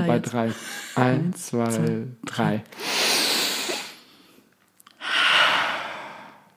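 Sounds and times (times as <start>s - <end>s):
speech: 0.0s - 2.9s
deep breathing during a group breathing exercise: 2.7s - 6.5s.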